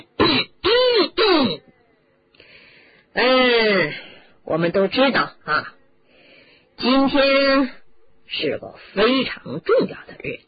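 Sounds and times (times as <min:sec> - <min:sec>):
person deliberately clearing throat: 0:00.0 - 0:01.7
speech: 0:03.2 - 0:05.8, 0:06.8 - 0:10.4.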